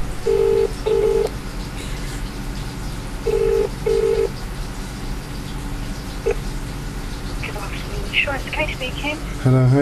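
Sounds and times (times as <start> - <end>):
steady low hum: 0.0 - 9.7
telephone double-burst ringback tone: 0.2 - 1.3, 3.3 - 4.3.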